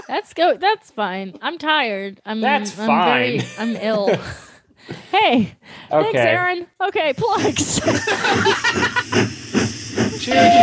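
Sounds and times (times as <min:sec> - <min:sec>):
speech: 0:00.1 - 0:08.9, 0:10.2 - 0:10.6
laughter: 0:03.2 - 0:04.6, 0:07.2 - 0:10.6
steam train chugging with hissing puffs of steam: 0:07.2 - 0:10.6
steam train whistle: 0:10.2 - 0:10.6.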